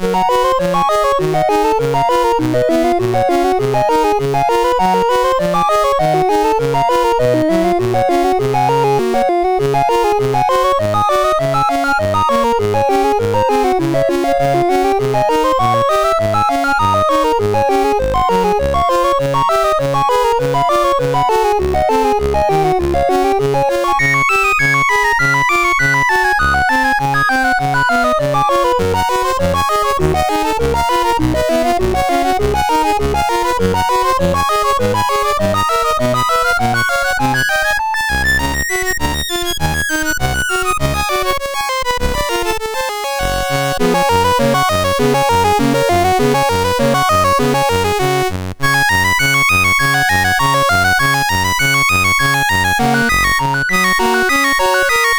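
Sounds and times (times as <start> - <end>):
etude played on a MOS6581R2 sound chip: 0.0 - 55.1.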